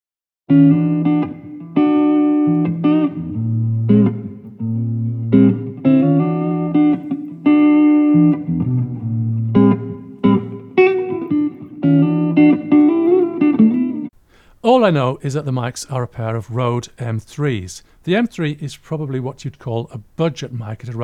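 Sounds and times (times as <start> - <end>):
speech: 0.5 - 0.8, 14.9 - 21.0
guitar playing notes and chords with natural room reverb: 0.5 - 14.1.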